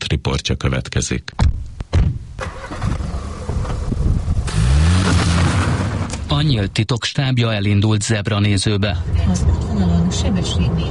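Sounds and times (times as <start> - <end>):
speech: 0.4 - 1.7, 6.4 - 10.8
constant low car engine rumble on the road from Budapest to Felcsút in Hungary: 1.8 - 6.8, 8.6 - 10.8.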